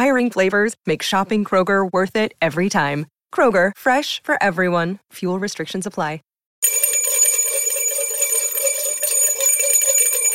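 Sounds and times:
speech: 0.0s - 6.8s
bright high bell ringing: 6.6s - 10.3s.

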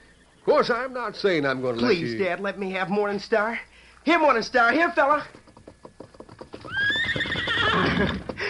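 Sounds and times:
speech: 0.4s - 5.4s
horse hooves clopping at a walking pace: 4.6s - 8.4s
horse whinnying: 6.2s - 8.4s.

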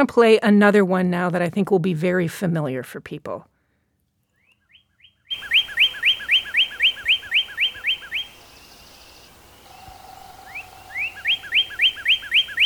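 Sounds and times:
speech: 0.0s - 3.5s
male northern cardinal singing loud clear whistles: 4.4s - 12.6s.

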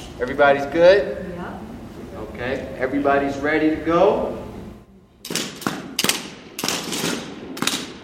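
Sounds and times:
speech: 0.2s - 1.4s, 2.4s - 4.4s
simulated rifle fire from imitation rifles at a virtual firing range: 5.2s - 8.0s.

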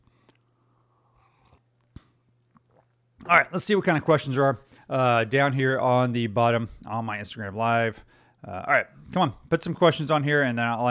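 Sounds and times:
person sipping coffee: 0.0s - 3.3s
faint mouth and swallowing noises: 1.1s - 3.3s
speech: 3.2s - 10.8s.

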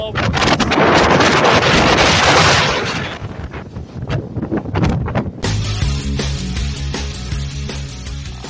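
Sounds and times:
hurricane wind buffeting a cell phone microphone on a boardwalk in Florida: 0.0s - 5.6s
music: 5.4s - 8.4s.

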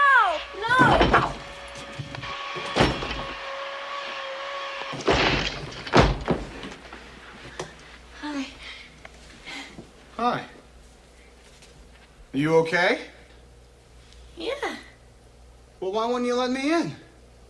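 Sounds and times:
door being forced open with heavy thuds: 0.6s - 3.5s, 4.9s - 6.8s
speech: 12.4s - 13.1s, 15.8s - 17.0s.

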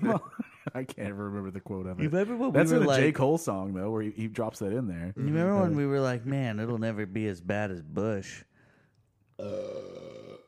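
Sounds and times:
speech: 0.1s - 8.5s, 9.4s - 10.2s
loud drawn-out burp: 9.4s - 10.4s.

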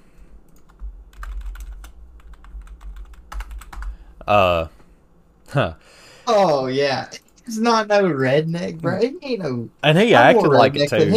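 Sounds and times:
typing on a computer keyboard: 0.5s - 3.9s
speech: 4.3s - 4.8s, 5.5s - 11.1s.

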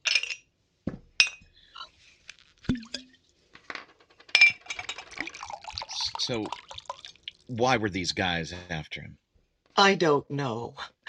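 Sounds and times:
glasses clinking together: 0.0s - 0.5s, 1.2s - 1.6s, 2.7s - 7.1s
scotch being poured into glasses: 2.3s - 3.2s, 4.5s - 7.6s
speech: 6.3s - 6.7s, 7.5s - 9.2s, 9.8s - 10.9s.

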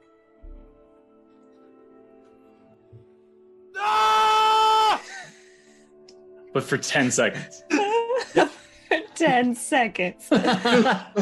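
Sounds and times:
person imitating an agonized scream: 3.8s - 5.1s
speech: 6.6s - 7.8s, 9.2s - 11.1s
laughter: 7.0s - 9.6s, 10.3s - 11.1s.

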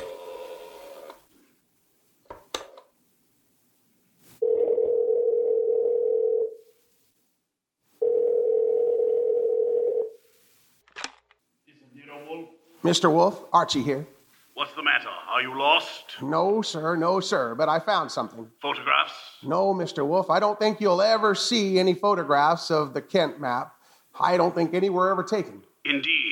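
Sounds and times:
telephone ringing tone on the line: 4.4s - 6.5s, 8.0s - 10.1s
speech: 12.9s - 14.1s, 15.0s - 26.1s.

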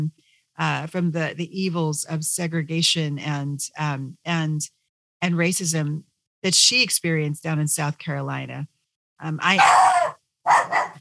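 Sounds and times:
speech: 0.0s - 10.6s
female dog barking with a growling edge: 9.6s - 10.9s.

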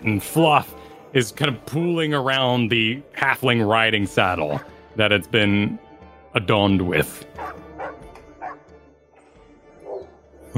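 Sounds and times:
speech: 0.0s - 7.5s
dog barking: 7.4s - 8.6s, 9.8s - 10.5s.

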